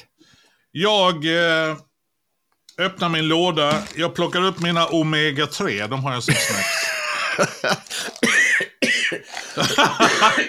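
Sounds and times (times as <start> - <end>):
speech: 0.7 - 1.9, 2.8 - 8.3, 9.1 - 10.4
loud burst of laughter: 6.3 - 7.9, 9.5 - 10.4
harsh rough hacking coughs: 6.3 - 10.4.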